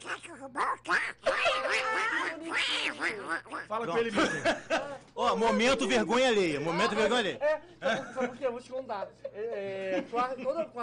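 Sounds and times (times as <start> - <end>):
speech: 0.0 - 1.3, 3.4 - 10.8
person imitating a cartoon duck quacking: 0.0 - 3.9
laughter: 1.2 - 3.2, 3.8 - 5.8, 7.8 - 8.4, 9.0 - 10.8.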